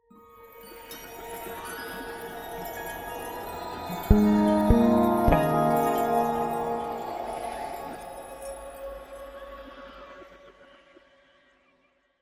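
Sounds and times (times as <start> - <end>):
magical chimes: 2.6 - 9.2
melancholy synth chord: 3.9 - 9.2.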